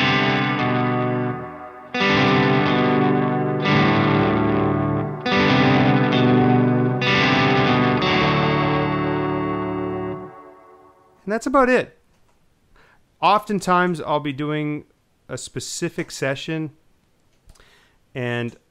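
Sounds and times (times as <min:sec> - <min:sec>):
electric guitar chords played through an effects pedal with hall reverb and delay: 0:00.0 - 0:11.2
speech: 0:11.3 - 0:12.0, 0:13.2 - 0:16.8, 0:18.1 - 0:18.6.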